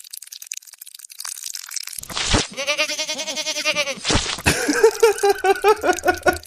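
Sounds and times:
loud wavering goat bleat: 0:02.5 - 0:04.2
laughter: 0:04.4 - 0:06.4.

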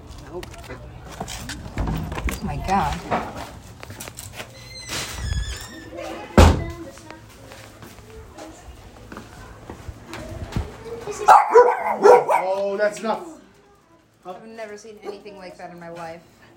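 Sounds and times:
talking: 0:00.0 - 0:01.8, 0:05.6 - 0:16.5
speech: 0:00.3 - 0:01.8, 0:02.4 - 0:03.5, 0:11.9 - 0:13.3, 0:14.3 - 0:16.3
dog barking: 0:11.2 - 0:12.6.

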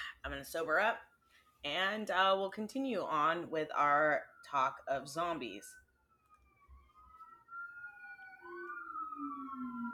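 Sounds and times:
speech: 0:00.2 - 0:05.8
emergency vehicle sirens wailing: 0:03.0 - 0:09.9.

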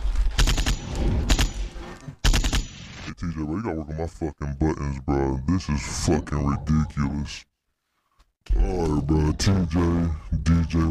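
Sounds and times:
rapid bursts of loud gunfire: 0:00.3 - 0:01.6, 0:02.2 - 0:02.8
speech: 0:03.2 - 0:07.5, 0:08.4 - 0:10.8.

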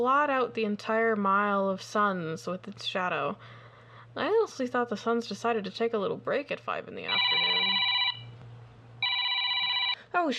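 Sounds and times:
speech: 0:00.0 - 0:03.6, 0:04.2 - 0:07.9, 0:10.1 - 0:10.3
telephone ringing with electronic warble: 0:07.1 - 0:08.3, 0:09.0 - 0:10.0.

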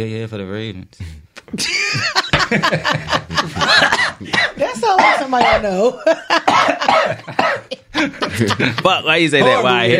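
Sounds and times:
speech: 0:00.0 - 0:09.9
laughter: 0:01.6 - 0:09.9
harsh raspy coughing: 0:03.6 - 0:08.7.

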